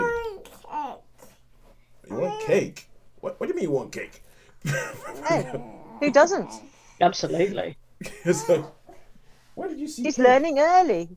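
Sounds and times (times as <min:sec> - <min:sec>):
toddler fussing and babbling: 0:00.0 - 0:01.4, 0:02.1 - 0:02.7, 0:05.2 - 0:06.7
speech: 0:02.5 - 0:08.8, 0:09.6 - 0:11.1
laughter: 0:04.7 - 0:05.8.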